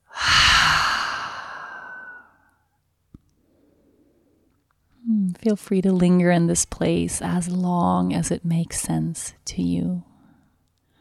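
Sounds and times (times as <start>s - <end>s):
exhaling through an open mouth during a guided breathing exercise: 0.0s - 2.3s
speech: 5.4s - 10.1s.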